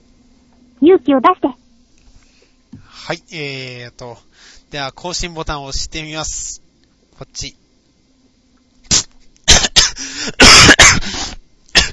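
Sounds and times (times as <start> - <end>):
speech: 0.8 - 1.6, 3.1 - 6.6, 7.4 - 7.6
person in a coughing fit with choking: 8.9 - 11.9.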